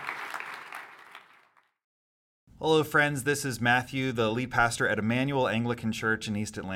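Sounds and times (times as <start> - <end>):
church audience applauding a guest speaker at an Anglican church in East Atlanta: 0.0 - 1.7
speech: 2.6 - 6.7.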